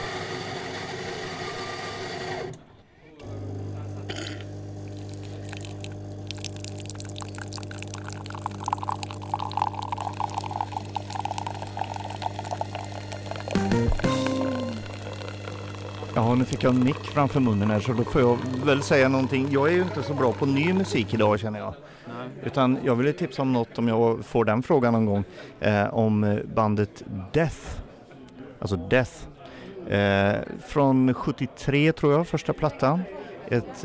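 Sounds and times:
coffee machine humming with low motor drone: 3.2 - 21.4
coffee pouring and trickling: 4.1 - 21.4
speech: 16.3 - 27.8, 28.6 - 29.3, 29.9 - 33.8.

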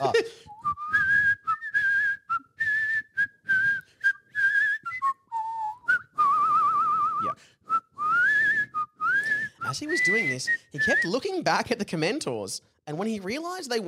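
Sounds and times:
person whistling a tune: 0.3 - 11.2
speech: 10.0 - 13.8.

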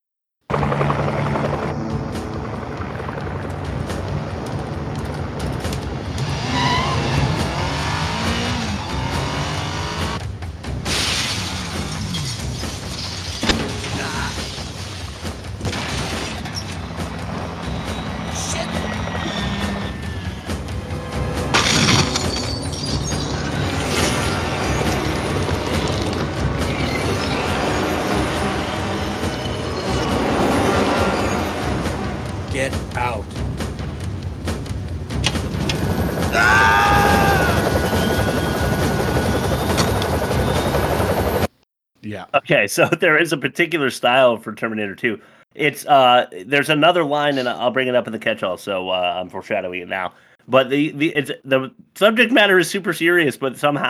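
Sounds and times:
sharp crashes: 0.5 - 39.7
dense chaotic rumble: 0.5 - 41.5
helicopter roar: 0.5 - 41.5
bursts of shattering glass: 10.8 - 17.2, 21.5 - 28.5
speech: 42.4 - 53.8.

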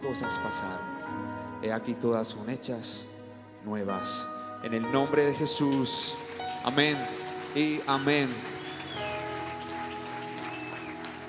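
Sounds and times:
speech: 0.1 - 8.5
audience applauding: 5.3 - 11.2.

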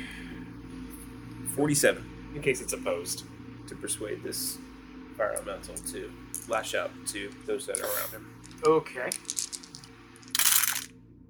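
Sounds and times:
quiet low hum: 0.0 - 11.2
speech: 1.6 - 9.4
dice tumbling across a table for a tabletop game roll: 5.8 - 10.9.

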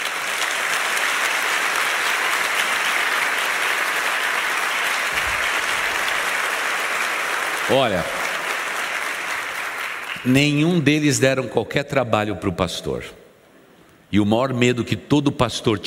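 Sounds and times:
large audience applause: 0.0 - 10.8
speech: 7.7 - 8.2, 10.2 - 13.2, 14.1 - 15.8.

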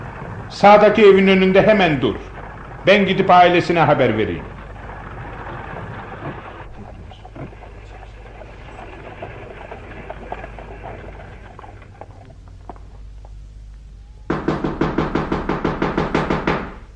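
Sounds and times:
low rumbling noise: 0.0 - 16.9
speech: 0.5 - 4.5
loud sharp knocks on a door: 14.3 - 16.8.

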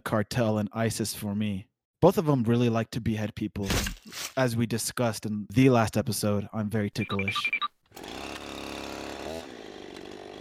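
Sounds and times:
speech: 0.1 - 8.1
chainsaw running: 7.9 - 10.3.

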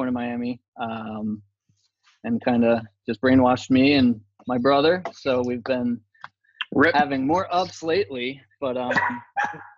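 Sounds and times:
speech: 0.0 - 1.5, 2.2 - 6.1, 6.7 - 9.7
dog barking: 8.9 - 9.7.

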